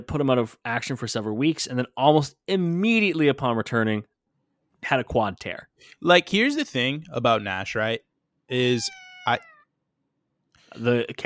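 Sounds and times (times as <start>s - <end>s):
speech: 0.0s - 4.1s, 4.8s - 9.5s, 10.7s - 11.2s
cat meowing: 8.5s - 9.7s.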